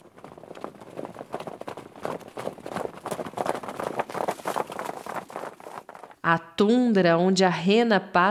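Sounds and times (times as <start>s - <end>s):
wild horses galloping over grass: 0.0s - 6.3s
speech: 6.3s - 8.2s.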